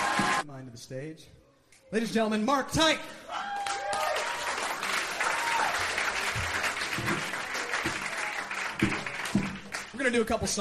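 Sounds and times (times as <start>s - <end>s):
scattered audience applause: 0.0s - 0.4s, 3.4s - 10.0s
speech: 0.7s - 3.6s, 10.0s - 10.5s.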